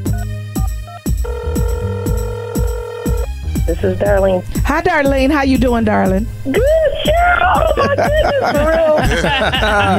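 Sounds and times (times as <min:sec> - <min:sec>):
telephone ringing after a caller has been dialed: 0:01.2 - 0:03.3
speech: 0:03.7 - 0:09.9
laughter: 0:07.4 - 0:09.9.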